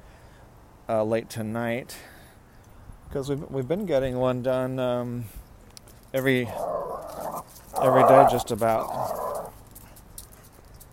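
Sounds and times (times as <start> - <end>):
speech: 0.9 - 2.1, 3.1 - 5.4, 6.1 - 6.9, 7.8 - 9.2
faint scrabbling clicks: 5.6 - 10.9
dog whimpering and barking excitedly: 6.6 - 9.5.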